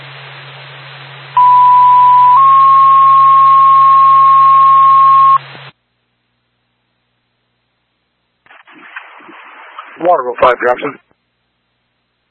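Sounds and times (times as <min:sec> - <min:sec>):
fire department dispatch paging tones over a scanner: 0:01.4 - 0:05.4
hissing radio static: 0:08.4 - 0:11.2
speech: 0:10.1 - 0:11.1.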